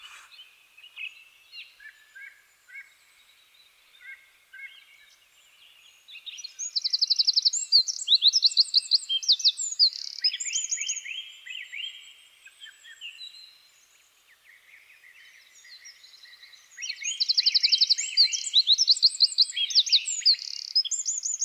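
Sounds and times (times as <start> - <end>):
Eurasian wren (Troglodytes troglodytes) song of high metallic trills: 0.0 - 21.4.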